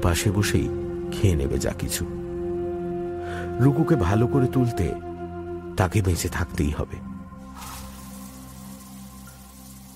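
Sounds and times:
speech: 0:00.0 - 0:02.2, 0:03.3 - 0:05.1, 0:05.8 - 0:07.1
shower water running: 0:07.4 - 0:09.9.

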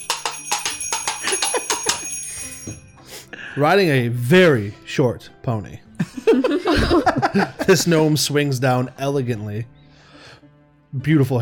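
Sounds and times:
small bells jingling: 0:00.0 - 0:03.2
laughter: 0:01.2 - 0:02.0, 0:06.0 - 0:08.1
speech: 0:03.6 - 0:05.9, 0:06.7 - 0:09.8, 0:10.9 - 0:11.4.

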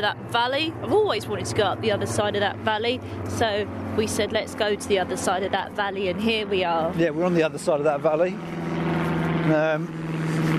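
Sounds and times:
speech: 0:00.0 - 0:08.6, 0:09.5 - 0:10.2
propeller plane droning overhead: 0:00.0 - 0:10.5.

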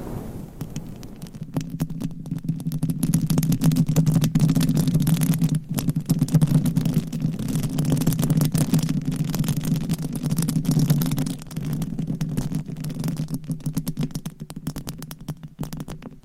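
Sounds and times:
long nails scratching and rubbing against a microphone: 0:00.2 - 0:16.2.

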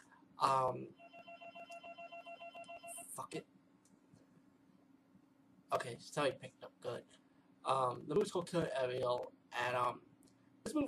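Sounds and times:
speech: 0:00.4 - 0:01.0, 0:03.2 - 0:03.6, 0:05.7 - 0:10.8
telephone ringing with a rapid electronic trill: 0:00.9 - 0:03.2.

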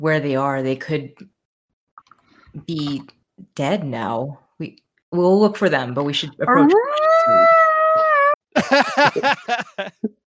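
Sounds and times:
speech: 0:00.0 - 0:01.3, 0:02.6 - 0:07.6, 0:08.6 - 0:10.2
howling and yowling: 0:06.5 - 0:08.4
laughter: 0:08.6 - 0:10.2.

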